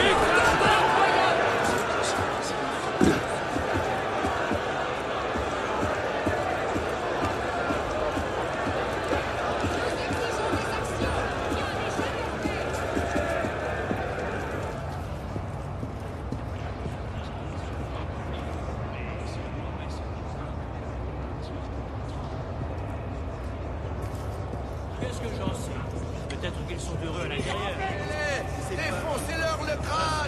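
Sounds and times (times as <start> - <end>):
footsteps walking from a crowd into a reverberant indoor space: 0.0 - 17.8
dense noisy crowd babble: 0.0 - 30.2.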